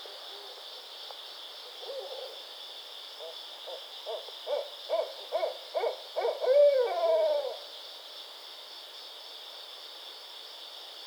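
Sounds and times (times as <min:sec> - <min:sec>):
barred owl hooting: 0:04.1 - 0:07.6.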